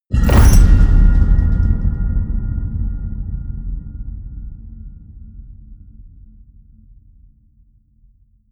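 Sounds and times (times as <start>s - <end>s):
medium hollow metal crash ringing out: 0.1s - 1.9s.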